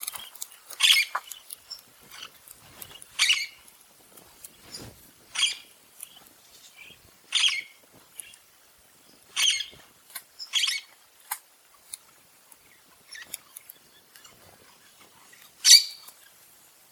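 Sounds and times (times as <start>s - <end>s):
red-winged parrot calling: 3.0s - 3.6s, 5.3s - 5.7s, 6.8s - 7.8s, 9.3s - 9.8s, 15.6s - 16.0s.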